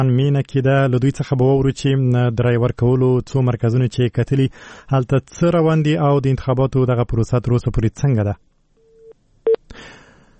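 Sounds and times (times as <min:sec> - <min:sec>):
speech: 0:00.0 - 0:08.5
noisy hiss on a telephone line: 0:00.0 - 0:10.3
faint steady telephone tone while placing a call: 0:08.8 - 0:09.7.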